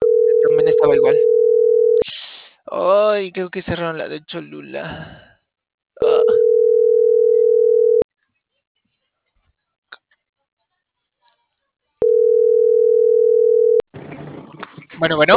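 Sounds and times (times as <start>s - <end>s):
telephone ringing tone on an outgoing call: 0.0s - 2.0s, 6.0s - 8.0s, 12.0s - 13.8s
speech: 0.7s - 1.3s, 2.7s - 5.3s, 6.0s - 6.4s, 15.0s - 15.3s.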